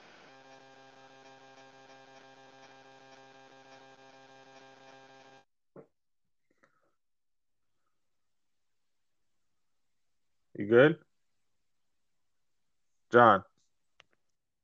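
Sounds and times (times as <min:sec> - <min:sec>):
faint crackles: 0:00.0 - 0:05.5
loud steady electrical buzz on a phone line: 0:00.0 - 0:05.5
speech: 0:10.6 - 0:11.0, 0:13.1 - 0:13.5.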